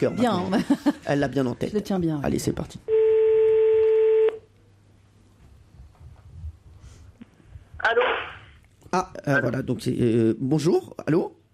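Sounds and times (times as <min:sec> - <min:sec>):
speech: 0:00.0 - 0:03.0, 0:07.8 - 0:08.1, 0:08.9 - 0:11.4
electronic telephone tone as a call is placed: 0:02.9 - 0:04.4.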